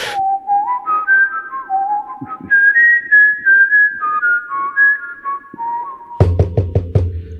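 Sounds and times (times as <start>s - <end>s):
person whistling a melodic tune to summon someone: 0.0s - 7.3s
knocking on a door: 6.2s - 7.3s.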